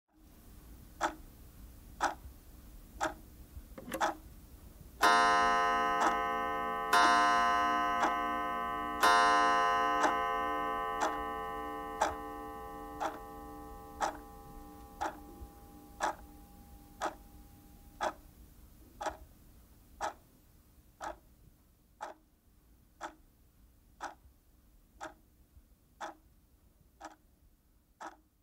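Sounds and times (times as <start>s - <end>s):
pendulum clock: 1.0s - 1.3s, 2.0s - 2.3s, 3.0s - 3.2s, 3.8s - 4.3s, 5.0s - 18.3s, 18.9s - 19.3s, 20.0s - 20.2s, 21.0s - 21.2s, 22.0s - 22.2s, 23.0s - 23.2s, 24.0s - 24.2s, 25.0s - 25.2s, 26.0s - 26.2s, 27.0s - 27.2s, 28.0s - 28.3s.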